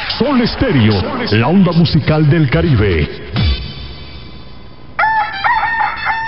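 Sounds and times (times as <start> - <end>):
speech: 0.2 - 3.2
rooster crowing: 5.0 - 6.2.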